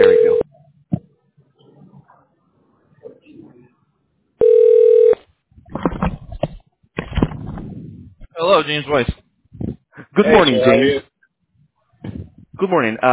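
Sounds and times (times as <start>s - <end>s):
loud steady telephone dial tone: 0.0s - 0.4s, 4.4s - 5.2s
speech: 8.6s - 9.2s, 10.2s - 11.1s, 12.6s - 13.1s.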